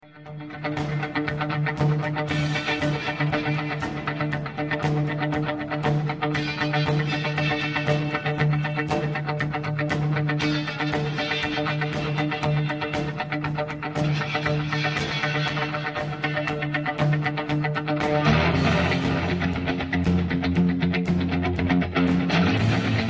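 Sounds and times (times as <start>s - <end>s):
rhythm guitars with delay: 0.0s - 23.0s.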